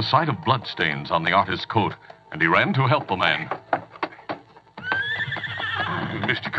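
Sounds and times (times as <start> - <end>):
speech: 0.0 - 3.6, 6.1 - 6.5
spavined horse hoof clops slowing to a halt: 1.1 - 6.5
spavined horse whinnying: 3.5 - 6.5.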